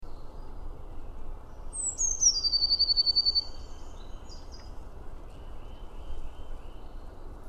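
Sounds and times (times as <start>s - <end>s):
low steady noise: 0.0s - 7.4s
Eurasian blue tit Cyanistes caeruleus calling with a brisk trill: 1.8s - 3.7s.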